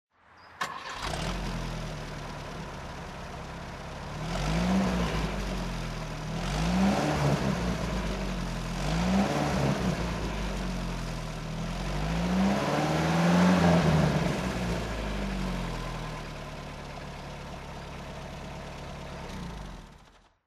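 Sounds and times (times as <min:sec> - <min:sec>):
Citroen DS23 engine throttle revving: 0:00.6 - 0:02.3, 0:04.0 - 0:11.0, 0:11.6 - 0:16.0.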